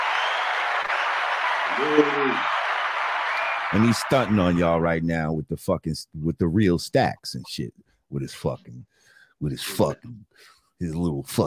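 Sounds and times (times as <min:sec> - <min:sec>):
short tonal cheer or whoop: 0:00.0 - 0:04.8
steady dense clapping: 0:00.0 - 0:04.8
speech: 0:01.8 - 0:02.6, 0:03.7 - 0:11.4.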